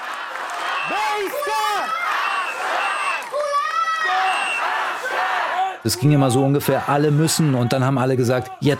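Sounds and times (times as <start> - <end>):
large protest crowd chanting a call-and-response slogan in unison: 0.0 - 8.7
speech: 5.8 - 8.7.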